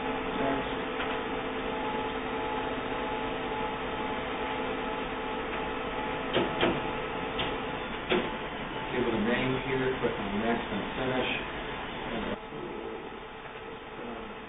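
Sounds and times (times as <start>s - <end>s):
printer printing a test page: 0.0s - 14.4s
printer clicks and clunks as the page feeds through: 6.3s - 8.4s.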